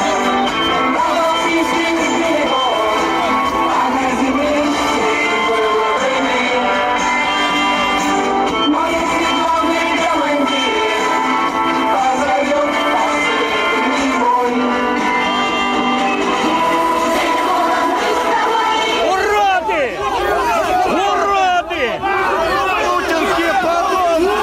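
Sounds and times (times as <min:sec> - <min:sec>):
large rally crowd chanting slogans in unison: 0:00.0 - 0:24.4.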